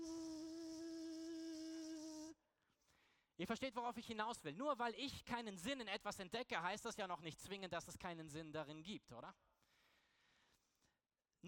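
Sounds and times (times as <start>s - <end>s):
mosquito whining in a tent: 0.0s - 2.3s
speech: 3.4s - 9.4s.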